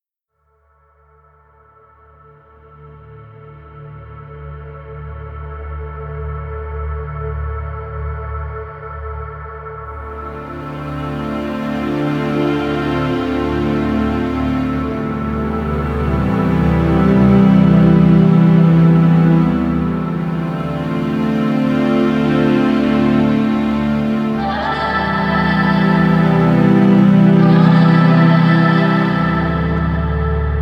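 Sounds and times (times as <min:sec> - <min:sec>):
open chords: 0:10.0 - 0:30.6.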